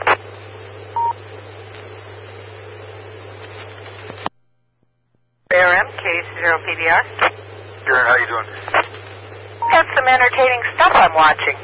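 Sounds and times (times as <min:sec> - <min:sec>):
radio-like hiss: 0:00.0 - 0:04.3, 0:05.5 - 0:11.6
steady low hum: 0:00.0 - 0:11.6
telephone keypad tone: 0:01.0 - 0:01.2
speech: 0:05.5 - 0:08.8, 0:09.7 - 0:11.6.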